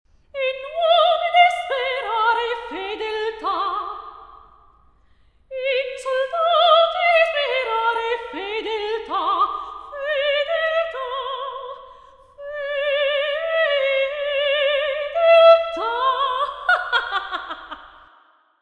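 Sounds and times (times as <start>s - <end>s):
singing voice in a concert hall: 0.4s - 4.3s, 5.5s - 17.9s.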